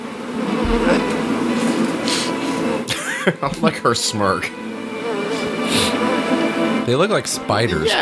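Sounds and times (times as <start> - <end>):
swarm of bees buzzing: 0.0 - 6.8
low rumble: 0.7 - 1.6
laughter: 2.9 - 4.4
speech: 3.2 - 4.6, 6.9 - 8.0.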